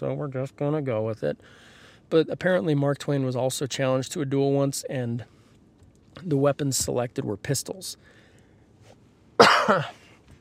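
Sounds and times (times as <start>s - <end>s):
speech: 0.0s - 5.4s, 6.2s - 8.2s, 9.4s - 10.0s
dry hacking cough from a person with fever and chills: 9.4s - 10.0s.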